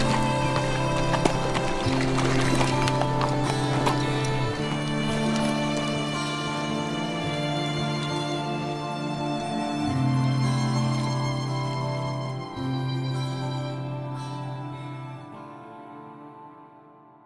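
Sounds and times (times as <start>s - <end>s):
horse hooves clip-clopping in a trotting rhythm as a rider sets off: 0.0s - 7.0s
sustained musical backdrop: 0.0s - 17.2s.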